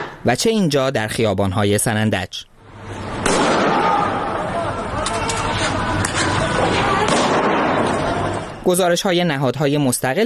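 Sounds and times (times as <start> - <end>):
speech: 0.2 - 3.0, 8.7 - 10.2
crowd of protesters shouting in an Iranian street: 2.7 - 8.6
gunshots fired by security forces at protesters in an Iranian street: 3.2 - 4.2, 6.1 - 8.5.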